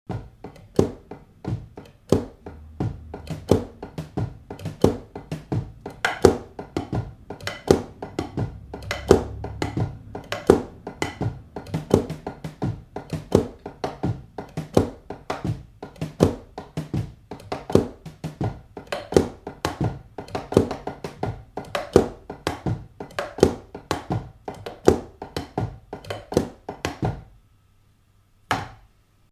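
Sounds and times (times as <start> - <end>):
knocking heard through headphones: 0.1 - 27.3.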